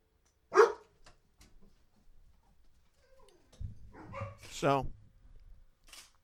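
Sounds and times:
loud sharp dog bark: 0:00.5 - 0:00.9, 0:03.9 - 0:04.5
speech: 0:04.6 - 0:05.0.

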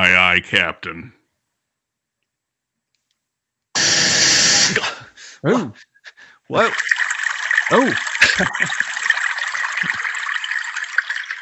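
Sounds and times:
speech: 0:00.0 - 0:01.2, 0:05.4 - 0:05.9, 0:06.5 - 0:07.1, 0:07.7 - 0:09.0, 0:09.8 - 0:10.1
person laughing: 0:04.6 - 0:05.7, 0:07.7 - 0:08.9
steady stream of running water pouring: 0:06.5 - 0:11.4.

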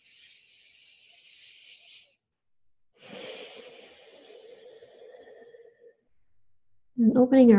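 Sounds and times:
deep breathing through the nose during a guided relaxation exercise: 0:00.0 - 0:02.2, 0:03.0 - 0:05.7.

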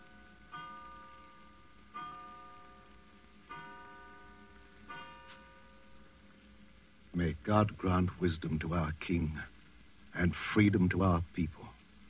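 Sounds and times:
clock striking twelve with bell-like chimes: 0:00.0 - 0:06.2
speech: 0:07.2 - 0:09.5, 0:10.2 - 0:12.0.

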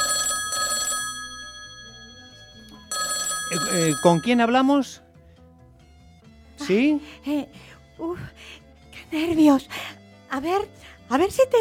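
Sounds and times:
telephone ringing with an incoming call: 0:00.0 - 0:04.7
speech: 0:03.5 - 0:05.0, 0:06.7 - 0:11.5.

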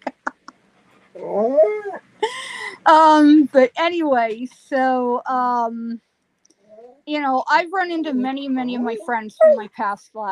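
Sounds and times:
dog whining for attention: 0:01.1 - 0:02.1, 0:08.7 - 0:09.7
speech: 0:02.8 - 0:06.1, 0:07.1 - 0:10.3.

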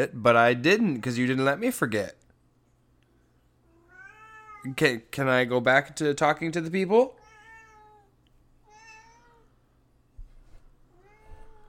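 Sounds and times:
speech: 0:00.0 - 0:02.2, 0:04.6 - 0:07.2
low hum: 0:00.0 - 0:11.6
cat meowing: 0:03.7 - 0:04.7, 0:07.2 - 0:09.5, 0:10.9 - 0:11.6.

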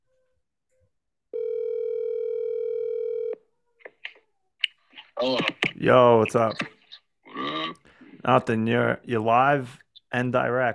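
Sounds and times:
telephone ringback tone on an outgoing call: 0:01.3 - 0:03.4
speech: 0:05.2 - 0:06.8, 0:08.2 - 0:10.7.

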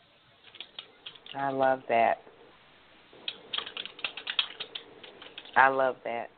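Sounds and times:
typing on a computer keyboard: 0:00.4 - 0:01.4, 0:03.2 - 0:05.6
speech: 0:01.3 - 0:02.3, 0:05.6 - 0:06.3.

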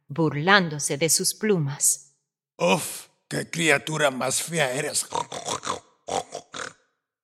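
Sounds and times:
speech: 0:00.1 - 0:05.6
pig grunting and snorting: 0:05.0 - 0:06.8.

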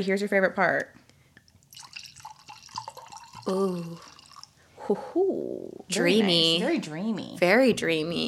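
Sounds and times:
speech: 0:00.0 - 0:01.0, 0:03.4 - 0:04.1, 0:04.9 - 0:08.2
2015 Carneros wine pouring into a glass: 0:01.6 - 0:04.7.

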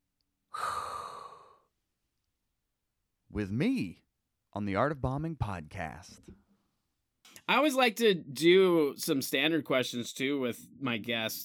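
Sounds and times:
deep breath inhaled: 0:00.5 - 0:01.7
speech: 0:03.4 - 0:06.4, 0:07.5 - 0:11.4.

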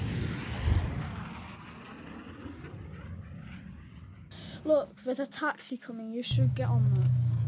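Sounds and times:
aeroplane flying overhead: 0:00.0 - 0:04.8
speech: 0:04.6 - 0:07.3.

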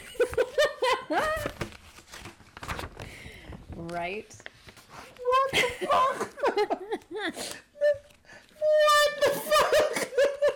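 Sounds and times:
laughter: 0:00.0 - 0:01.5, 0:05.5 - 0:07.4, 0:09.2 - 0:10.5
paper crinkling and rustling as it is handed over: 0:00.2 - 0:05.5
speech: 0:03.9 - 0:04.5, 0:05.5 - 0:08.0.

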